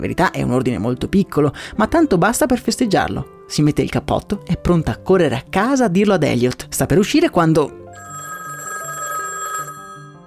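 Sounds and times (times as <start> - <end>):
speech: 0.0 - 7.8
telephone ringing with a bright electronic ring: 8.0 - 10.2.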